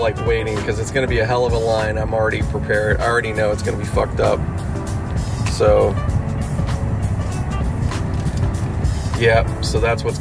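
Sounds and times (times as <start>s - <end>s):
speech: 0.0s - 4.7s, 5.6s - 6.1s, 9.2s - 10.1s
road traffic engines rumbling while waiting at a traffic light: 0.0s - 10.1s.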